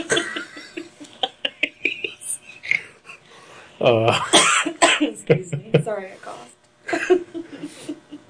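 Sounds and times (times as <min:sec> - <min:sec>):
laughter: 0:00.0 - 0:03.2, 0:03.8 - 0:04.3, 0:05.1 - 0:06.0, 0:06.9 - 0:08.2
speech: 0:03.8 - 0:04.4, 0:05.3 - 0:08.0
person coughing: 0:04.0 - 0:05.2.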